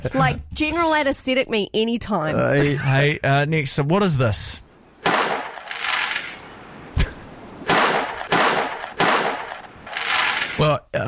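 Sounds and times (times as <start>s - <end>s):
speech: 0.0s - 4.6s, 10.6s - 11.0s
fireworks exploding: 5.0s - 6.4s, 7.6s - 10.6s.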